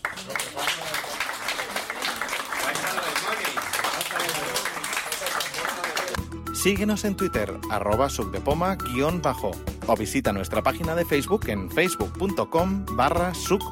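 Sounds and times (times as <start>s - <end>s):
crowd applauding: 0.0s - 6.2s
speech: 0.2s - 0.8s, 6.6s - 13.7s.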